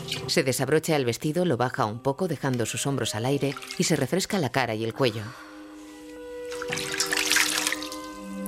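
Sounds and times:
speech: 0:00.3 - 0:05.5
water poured from a jug into a washbasin: 0:03.3 - 0:04.1, 0:06.5 - 0:08.3.

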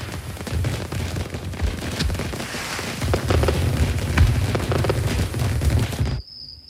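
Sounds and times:
distant fireworks exploding: 0:00.0 - 0:06.3.

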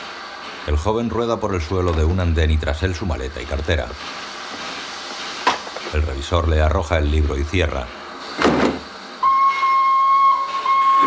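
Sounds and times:
steam hiss: 0:00.0 - 0:11.0
speech: 0:00.7 - 0:04.3, 0:05.9 - 0:08.6
steam train whistling as it departs from a station platform: 0:09.2 - 0:11.0.

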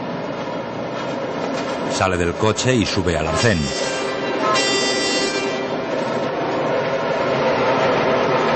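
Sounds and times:
train rushing past without stopping: 0:00.0 - 0:08.5
speech: 0:01.1 - 0:03.9
train horn blast: 0:03.5 - 0:06.2.

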